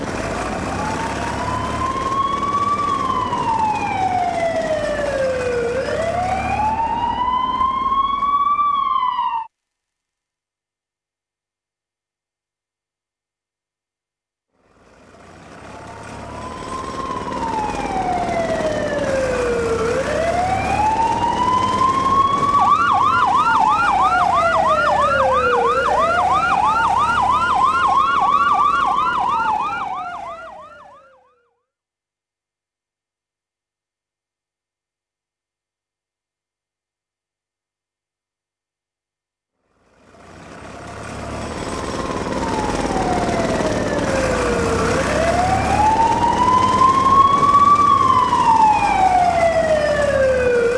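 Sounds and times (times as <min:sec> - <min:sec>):
ambulance sirens: 0:00.2 - 0:09.5, 0:15.6 - 0:31.6, 0:40.9 - 0:50.7.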